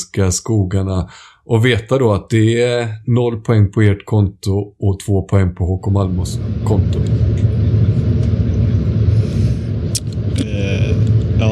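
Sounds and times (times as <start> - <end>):
speech: 0.2 - 7.4
bus engine rumble heard from inside the bus while driving: 6.1 - 11.5.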